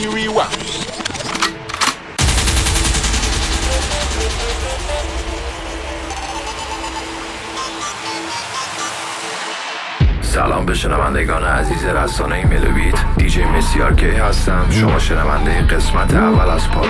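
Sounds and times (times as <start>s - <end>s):
speech: 0.0s - 0.9s, 10.4s - 16.8s
gunfire sound effect of rapid crackling fire: 2.2s - 8.0s
sharp bursts: 2.2s - 9.8s.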